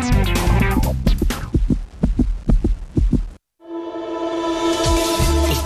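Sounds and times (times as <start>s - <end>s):
rhythmic heartbeat thumps sound effect: 0.1s - 3.4s
bright sustained tones: 3.6s - 5.6s.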